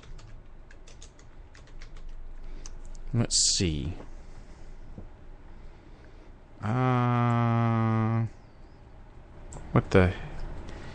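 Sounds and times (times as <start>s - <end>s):
rapid irregular typing on a computer keyboard: 0.0s - 2.8s
soft hum: 0.0s - 10.9s
speech: 3.1s - 4.1s, 6.6s - 7.6s, 9.7s - 10.3s.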